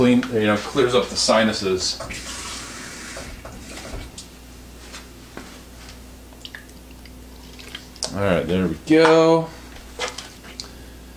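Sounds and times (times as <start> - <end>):
speech: 0.0 - 2.3, 8.2 - 9.6
faint water drips: 6.3 - 8.2.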